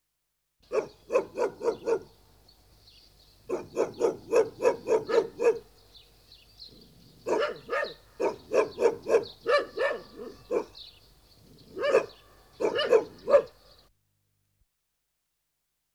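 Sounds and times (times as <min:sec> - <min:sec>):
Coyote Canis latrans yipping: 0:00.7 - 0:02.2, 0:03.5 - 0:05.8, 0:06.7 - 0:13.8.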